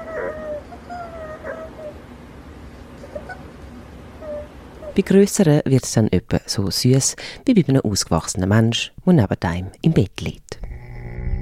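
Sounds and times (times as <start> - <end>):
speech: 5.0 - 10.7
small pet animal snoring with whistling squeaks: 10.6 - 11.4.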